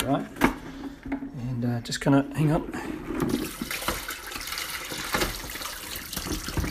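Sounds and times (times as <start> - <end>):
speech: 0.1 - 0.4, 1.8 - 3.5
water running over potatoes being rinsed: 3.4 - 6.6.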